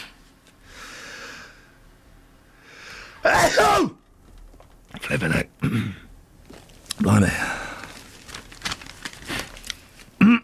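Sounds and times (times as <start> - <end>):
rising breathy inhales before a sneeze: 0.6 - 1.8, 2.6 - 3.2
person sneezing: 3.2 - 4.0
speech: 5.1 - 6.0, 7.0 - 7.6.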